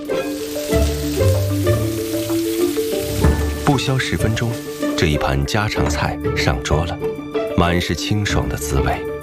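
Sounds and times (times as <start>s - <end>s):
cooked water caltrop and water celery sizzling in a wok: 0.0s - 6.0s
wok clanking: 3.0s - 4.9s
speech: 3.8s - 9.1s.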